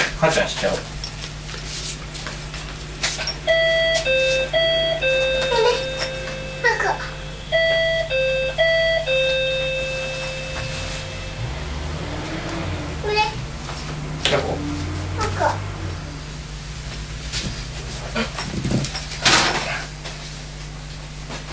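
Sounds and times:
speech: 0:00.2 - 0:01.0
steady low hum: 0:00.2 - 0:21.5
electronic doorbell chime: 0:03.5 - 0:11.4.

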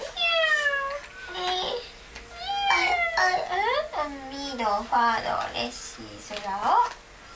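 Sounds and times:
cat meowing: 0:00.0 - 0:01.0, 0:02.3 - 0:03.4
speech: 0:04.6 - 0:07.0.

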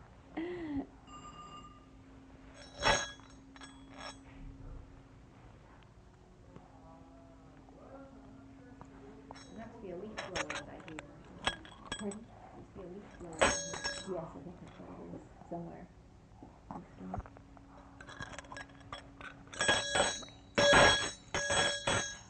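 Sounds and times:
small bell jingling while being shaken and handled: 0:02.6 - 0:04.2, 0:09.3 - 0:12.4, 0:13.0 - 0:14.8, 0:18.0 - 0:22.2.

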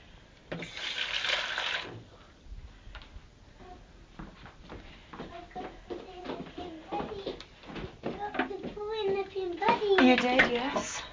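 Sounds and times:
speech: 0:00.5 - 0:01.0
water pouring into a pot to rinse it: 0:00.6 - 0:01.9
child talking: 0:05.2 - 0:10.8.

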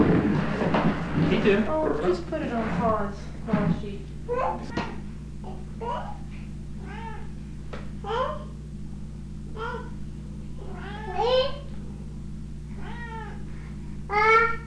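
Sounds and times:
steady low hum: 0:00.0 - 0:14.6
speech: 0:01.3 - 0:04.9
cat meowing: 0:12.8 - 0:13.4.

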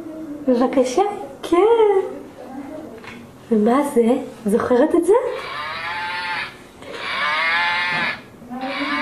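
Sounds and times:
speech: 0:00.5 - 0:02.2, 0:03.5 - 0:05.6
toy cow mooing: 0:05.3 - 0:09.0.

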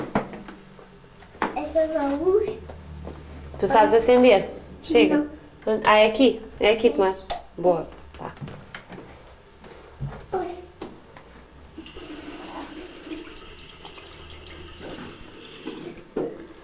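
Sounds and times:
speech: 0:01.8 - 0:02.8, 0:03.6 - 0:08.0
kitchen tap water rinsing a peach: 0:11.8 - 0:16.2.

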